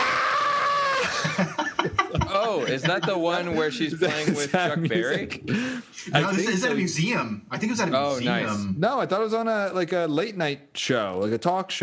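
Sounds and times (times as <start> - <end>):
voice imitating a shrill wavering scream into a microphone: 0.0 - 1.3
laughter: 0.9 - 6.6
speech: 2.5 - 11.8.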